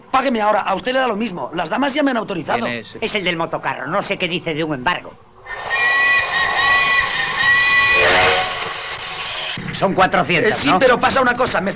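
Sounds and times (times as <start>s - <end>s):
speech: 0.1s - 5.2s, 9.8s - 11.7s
approaching train whistle: 5.4s - 9.6s.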